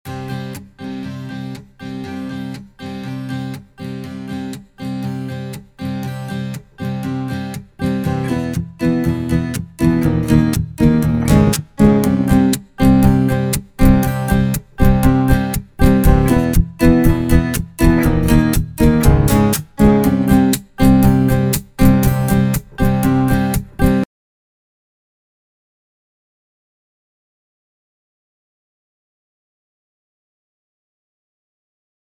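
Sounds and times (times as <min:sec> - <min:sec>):
strummed acoustic guitar: 0:00.1 - 0:24.1
drums: 0:10.0 - 0:24.0.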